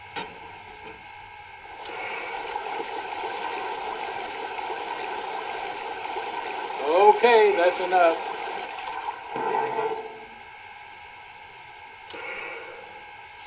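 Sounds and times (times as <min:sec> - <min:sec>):
faint mechanical hum: 0:00.0 - 0:13.4
water rushing into a steam locomotive tender: 0:01.7 - 0:10.1
speech: 0:07.2 - 0:08.3.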